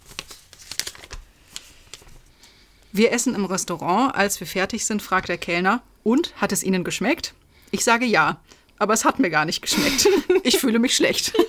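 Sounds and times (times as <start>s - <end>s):
sheet of paper being picked up and handled: 0.0s - 2.6s
speech: 2.9s - 11.4s.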